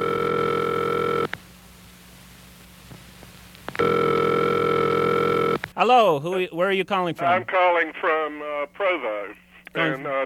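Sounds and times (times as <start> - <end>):
telephone ringing signal down the line: 0.0 - 1.3, 3.8 - 5.6
speech: 5.8 - 10.2.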